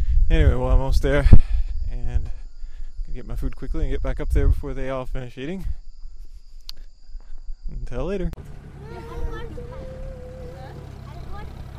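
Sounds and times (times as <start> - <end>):
speech: 0.3 - 2.4, 3.1 - 5.8, 7.8 - 9.1
tractor engine rumbling while people ride on the back: 8.4 - 11.7
people chattering on the back of a tractor: 8.8 - 11.7.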